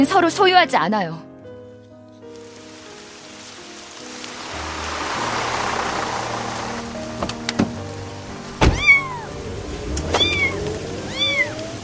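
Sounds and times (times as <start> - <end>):
speech: 0.0 - 1.3
rain: 2.3 - 11.8
low engine hum: 4.2 - 11.8
cat meowing: 8.7 - 9.4, 10.1 - 11.8.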